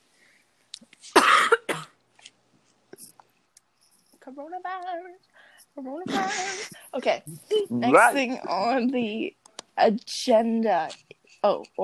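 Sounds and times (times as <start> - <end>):
person coughing: 1.2 - 1.9, 6.1 - 6.8
speech: 4.4 - 11.8
faint breaths: 5.3 - 5.8.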